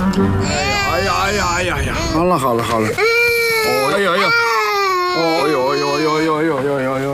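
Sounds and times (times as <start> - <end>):
speech: 0.2 - 4.5, 5.2 - 7.1
baby crying: 0.4 - 6.4.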